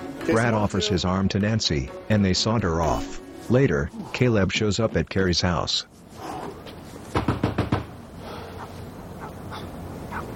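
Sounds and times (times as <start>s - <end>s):
speech: 0.3s - 6.3s
firm knocks on a door: 7.2s - 7.9s.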